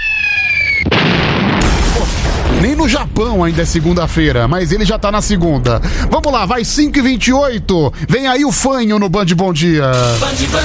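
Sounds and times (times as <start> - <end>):
bomb whistling tone sliding downward: 0.0 - 0.9
bomb explosion sound effect: 0.8 - 7.6
speech: 2.6 - 10.6.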